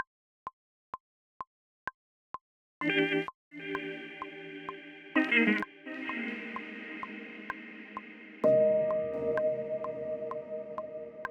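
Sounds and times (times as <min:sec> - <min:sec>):
piano with reverb: 0:03.6 - 0:11.2.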